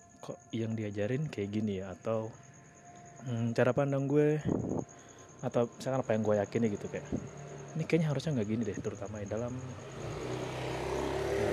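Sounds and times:
speech: 0:00.2 - 0:02.5, 0:03.2 - 0:10.2
motorcycle engine droning as it passes: 0:06.4 - 0:11.5.

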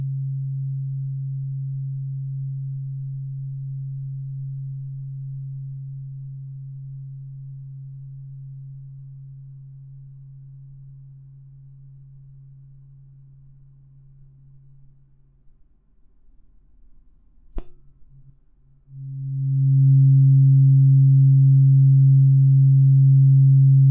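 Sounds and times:
sharp tap on tuning fork: 0:17.5 - 0:18.3
low pure tuning fork tone ringing: 0:18.9 - 0:23.8.

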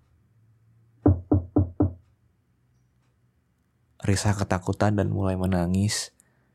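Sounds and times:
firm knocking on a wooden bedroom door: 0:01.1 - 0:02.0
speech: 0:04.0 - 0:06.2.

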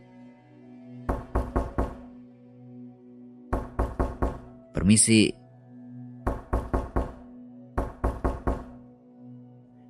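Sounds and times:
firm knocking on a door: 0:01.1 - 0:02.1, 0:03.5 - 0:04.5, 0:06.3 - 0:07.2, 0:07.8 - 0:08.8
speech: 0:04.8 - 0:05.4.

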